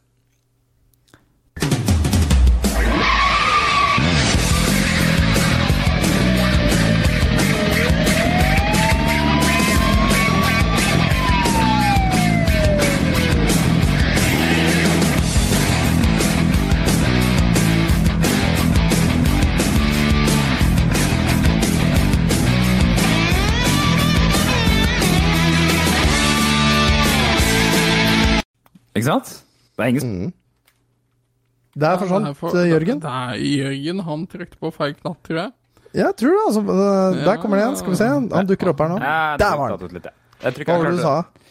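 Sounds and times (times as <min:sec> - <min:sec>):
video game soundtrack music with layered synth tones and driving beat: 0:01.6 - 0:28.4
speech: 0:29.0 - 0:30.4, 0:31.8 - 0:41.4.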